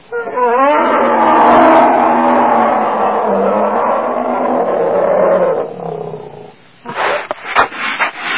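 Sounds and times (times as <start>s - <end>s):
young bear roaring: 0.2s - 6.5s.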